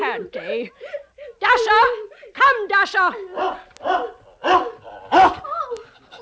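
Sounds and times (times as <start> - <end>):
speech: 0.2 - 0.9, 1.6 - 3.6
ferocious dog barking aggressively: 3.3 - 5.4.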